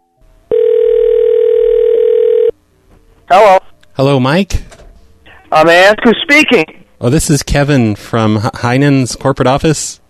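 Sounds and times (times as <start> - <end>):
steady telephone ringback tone: 0.0 - 2.6
speech: 3.3 - 4.6, 5.5 - 10.0.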